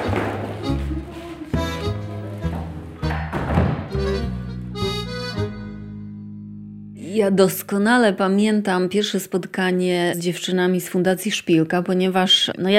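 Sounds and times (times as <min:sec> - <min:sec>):
old historic wooden parquet floorboards creaking under footsteps: 0:00.0 - 0:04.3
slow footsteps on old wooden parquet floor: 0:00.0 - 0:04.8
speech: 0:07.2 - 0:12.7.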